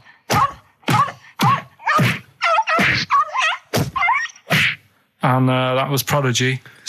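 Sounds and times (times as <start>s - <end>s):
heavy punching thuds sound effect: 0.3s - 3.1s, 3.7s - 4.8s
speech: 5.2s - 6.8s.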